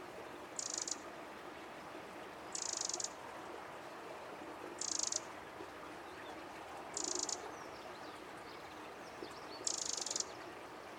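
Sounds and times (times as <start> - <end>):
steady low background hiss: 0.0 - 10.9
Eurasian wren giving short high buzzy rattling calls: 0.6 - 1.0, 2.6 - 3.1, 7.0 - 7.4.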